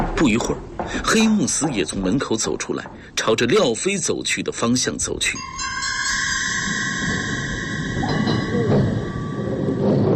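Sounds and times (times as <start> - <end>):
old tram rumbling slowly along rails on street: 0.0 - 10.1
speech: 0.2 - 6.0
tram high metallic whines: 5.2 - 10.1.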